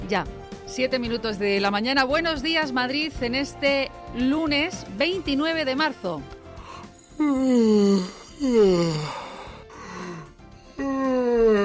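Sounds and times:
speech: 0.1s - 6.4s, 7.2s - 9.2s
person yawning: 6.7s - 11.6s.

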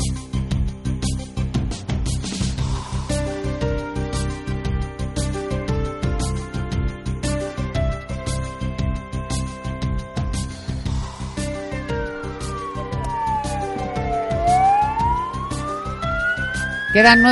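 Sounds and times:
busy rhythmic backdrop: 0.0s - 17.3s
emergency vehicle sirens wailing: 10.9s - 17.3s
speech: 17.0s - 17.3s.

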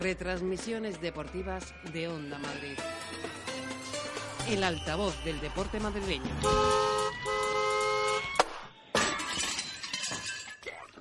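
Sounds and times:
speech: 0.0s - 3.5s, 4.5s - 7.0s
loud sustained horn blaring to start the count: 5.9s - 8.4s
short honking blasts: 6.3s - 8.4s
crashing shattering noise: 8.3s - 10.6s.

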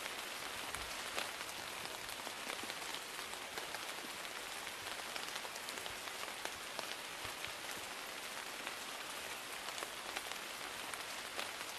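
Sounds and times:
steady rain pattering on tree leaves and earth: 0.0s - 11.7s.

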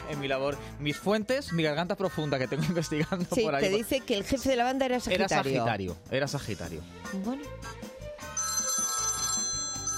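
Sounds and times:
speech: 0.1s - 7.9s
telephone ringing with electronic tone: 8.3s - 9.9s.

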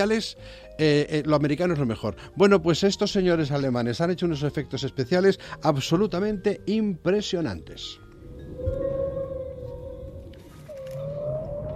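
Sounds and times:
speech: 0.0s - 8.0s, 8.6s - 9.0s
whales calling back and forth with long sliding tonal moans: 8.1s - 11.7s
low rumbling underwater wash: 8.2s - 11.7s.

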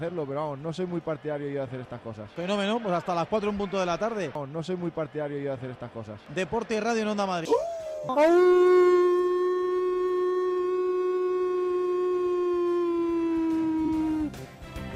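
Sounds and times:
speech: 0.0s - 8.9s
man imitating a wolf howl: 7.5s - 14.4s.

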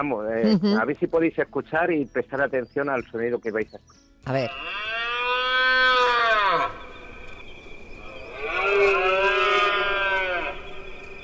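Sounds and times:
speech: 0.0s - 5.0s
red deer rutting bellows in a park: 4.5s - 6.9s, 8.0s - 10.9s.

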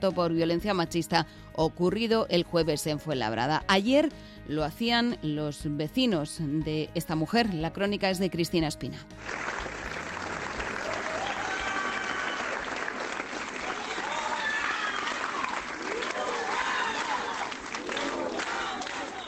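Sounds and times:
speech: 0.0s - 9.7s
large crowd clapping at an outdoor protest: 9.2s - 19.2s.

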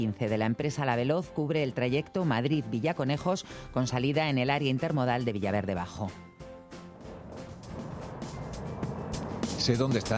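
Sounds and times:
speech: 0.0s - 6.3s, 9.6s - 10.1s
car driving, engine and tyre noise rumble: 6.8s - 10.1s.

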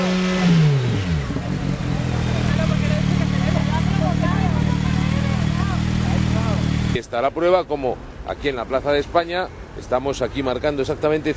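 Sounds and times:
vehicle engine passing by on a roadside: 0.0s - 7.0s
street din: 0.0s - 11.3s
low engine rumble: 0.1s - 7.4s
speech: 7.2s - 11.3s.

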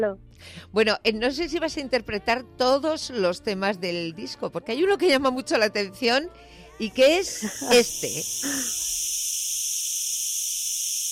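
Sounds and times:
speech: 0.0s - 9.2s
dense chorus of cicadas buzzing: 6.9s - 11.0s.

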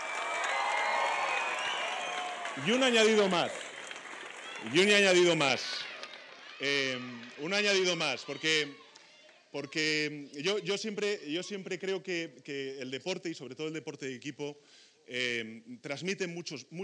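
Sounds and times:
people shouting and cheering: 0.0s - 3.6s, 4.3s - 10.8s
audience applause for a European football championship win: 0.0s - 8.7s
speech: 2.6s - 3.6s, 4.6s - 5.9s, 6.6s - 8.8s, 9.5s - 16.8s.

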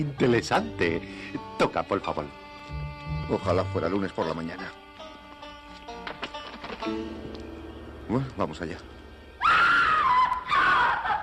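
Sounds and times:
speech: 0.0s - 2.4s, 3.3s - 4.8s, 6.8s - 7.4s, 8.1s - 8.9s
horrible scream from inside a room: 9.4s - 11.2s.

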